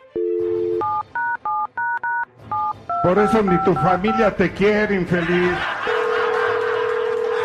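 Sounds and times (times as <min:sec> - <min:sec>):
touch-tone DTMF beeps of a phone number being dialed: 0:00.2 - 0:04.4
speech: 0:03.0 - 0:05.8
laughter: 0:04.6 - 0:07.4.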